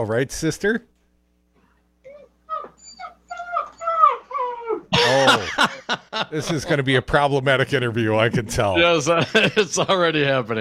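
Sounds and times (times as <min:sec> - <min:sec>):
speech: 0:00.0 - 0:00.9, 0:05.1 - 0:10.5
dog whimpering and whining: 0:02.0 - 0:04.9
laughter: 0:04.9 - 0:06.8, 0:09.1 - 0:10.2.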